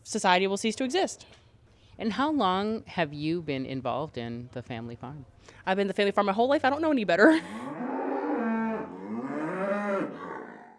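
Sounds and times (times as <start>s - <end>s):
speech: 0.1s - 1.4s, 2.0s - 7.8s
cow mooing on a family farm before feeding: 7.6s - 10.7s.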